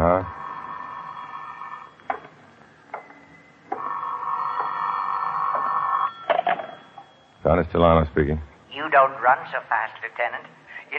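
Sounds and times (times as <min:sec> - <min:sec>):
telephone bell ringing: 0:00.3 - 0:02.1, 0:03.0 - 0:07.4
speech: 0:07.5 - 0:10.9.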